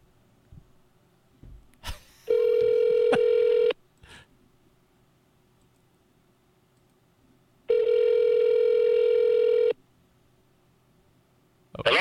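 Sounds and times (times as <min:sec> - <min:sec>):
electronic phone ring tone of a call: 0:02.3 - 0:03.8, 0:07.7 - 0:09.8
faint clicks: 0:05.6 - 0:05.9, 0:06.7 - 0:07.0.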